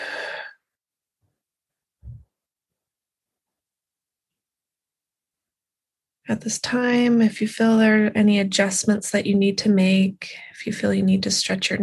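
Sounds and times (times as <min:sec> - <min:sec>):
deep breathing during guided sleep meditation: 0:00.0 - 0:00.6
speech: 0:06.3 - 0:11.8.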